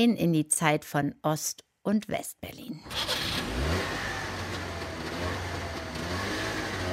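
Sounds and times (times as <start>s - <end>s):
speech: 0.0s - 3.6s
small Trabant car engine revving: 2.8s - 6.9s.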